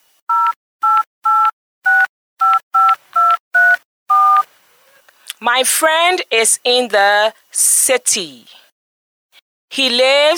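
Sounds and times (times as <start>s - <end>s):
cell phone keypad dialing tones: 0.3s - 4.5s
speech: 5.4s - 8.6s, 9.7s - 10.3s.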